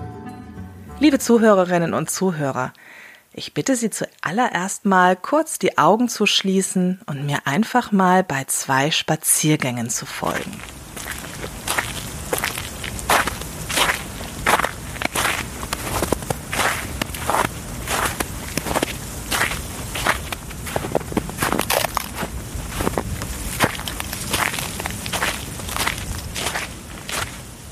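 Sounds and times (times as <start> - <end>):
speech: 1.0 - 10.8
stiff breeze blowing through icy branches: 10.0 - 27.6
footsteps crunching through deep snow: 10.3 - 27.6.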